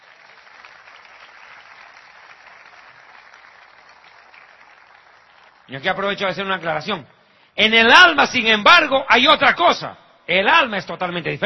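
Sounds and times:
church congregation applauding during a sermon: 0:00.0 - 0:06.8
speech: 0:05.7 - 0:11.4.

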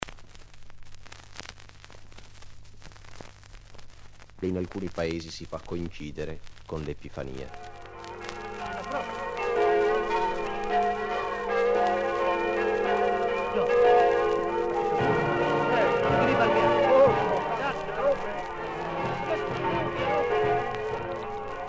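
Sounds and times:
speech: 0:04.4 - 0:07.7
village church bells ringing: 0:07.5 - 0:21.6
village band playing brass: 0:07.6 - 0:21.6.

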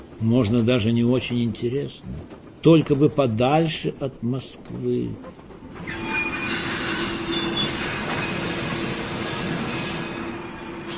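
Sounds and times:
speech: 0:00.2 - 0:06.0
train carriage brakes screeching as it lurches: 0:05.8 - 0:10.9.

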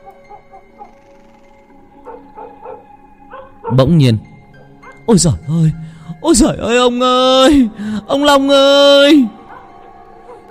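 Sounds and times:
dog on a porch barking wildly at sensed danger: 0:02.1 - 0:03.9, 0:09.5 - 0:10.5
speech: 0:03.7 - 0:04.3, 0:05.1 - 0:09.4.

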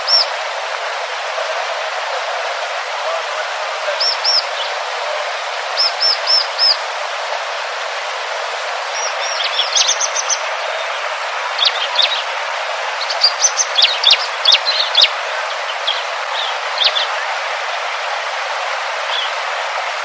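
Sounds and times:
Hill Prinia song with short high arched notes: 0:00.0 - 0:00.3, 0:04.0 - 0:04.8, 0:05.8 - 0:06.8, 0:09.0 - 0:11.0, 0:11.6 - 0:12.3, 0:13.0 - 0:17.1
loud steady hiss: 0:00.0 - 0:20.0.

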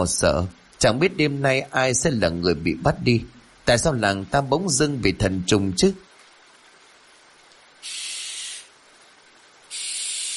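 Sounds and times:
speech: 0:00.0 - 0:06.1
barn owl screeching in harsh breathy hissing bursts: 0:07.8 - 0:08.7, 0:09.7 - 0:10.3.

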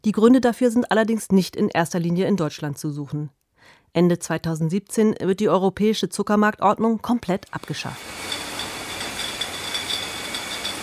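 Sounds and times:
speech: 0:00.0 - 0:08.4
machinery hiss from a ketchup bottling line: 0:07.6 - 0:10.8.

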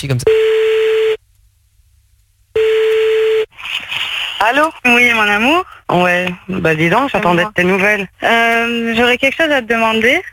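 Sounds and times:
speech: 0:00.0 - 0:00.6, 0:04.4 - 0:10.3
telephone line tone as a call is placed: 0:00.3 - 0:01.2, 0:02.6 - 0:03.5.

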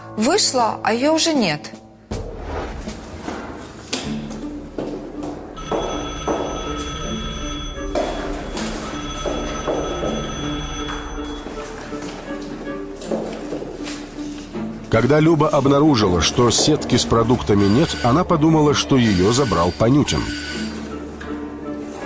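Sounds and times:
speech: 0:00.2 - 0:01.8, 0:15.0 - 0:20.6
telephone bell ringing inside an apartment: 0:05.6 - 0:11.8, 0:17.3 - 0:20.9.

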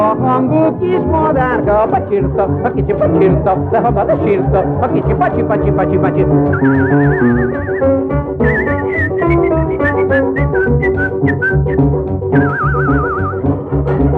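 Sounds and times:
speech: 0:00.4 - 0:08.2
person whistling a lively tune during a cabaret act: 0:06.5 - 0:13.5.

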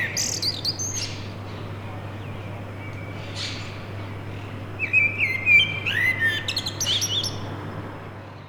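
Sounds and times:
common blackbird singing to defend its territory: 0:00.0 - 0:01.3, 0:04.8 - 0:07.4.

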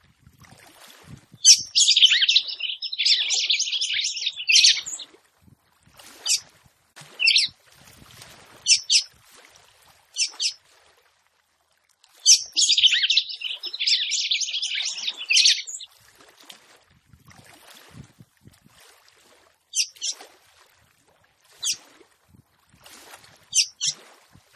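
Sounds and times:
female red-cowled cardinal song: 0:01.4 - 0:05.0, 0:06.2 - 0:06.4, 0:07.1 - 0:07.5, 0:08.7 - 0:09.1, 0:10.2 - 0:10.6, 0:12.2 - 0:15.9, 0:19.8 - 0:20.2, 0:23.5 - 0:24.0.

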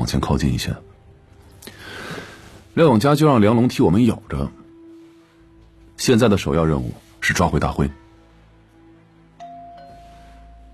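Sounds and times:
speech: 0:00.1 - 0:00.9, 0:02.8 - 0:04.6, 0:06.0 - 0:08.0
two-note doorbell chime: 0:09.4 - 0:10.7.

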